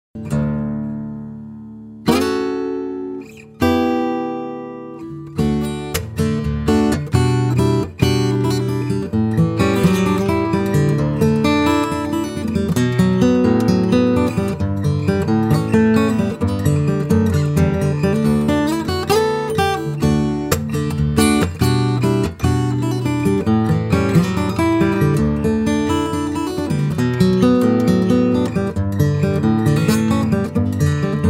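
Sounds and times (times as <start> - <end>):
guitar: 0.1 - 31.2.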